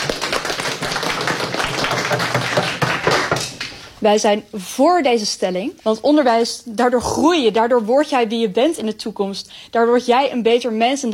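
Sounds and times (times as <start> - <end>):
crowd applauding: 0.0 - 3.6
speech: 4.0 - 11.1.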